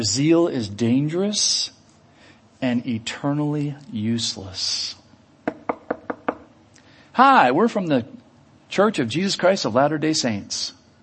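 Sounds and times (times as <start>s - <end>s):
speech: 0.0s - 1.8s, 2.6s - 5.0s, 7.2s - 10.8s
knocking on a door: 5.4s - 6.5s.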